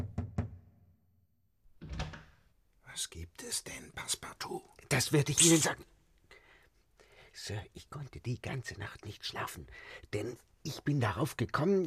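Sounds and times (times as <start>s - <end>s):
knocking on the door of a newly married couple's room: 0.0s - 0.8s
speech: 3.0s - 6.0s, 7.4s - 11.8s.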